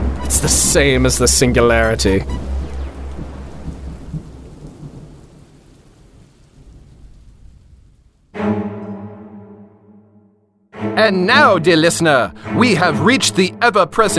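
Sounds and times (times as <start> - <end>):
deep rolling thunder: 0.0 - 8.3
heavy rain: 0.0 - 8.5
speech: 0.3 - 2.5, 11.0 - 14.1.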